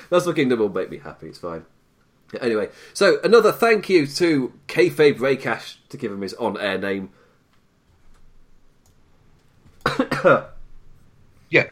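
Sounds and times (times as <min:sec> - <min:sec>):
speech: 0:00.1 - 0:07.2, 0:09.9 - 0:10.5, 0:11.5 - 0:11.7
coughing: 0:09.8 - 0:10.6.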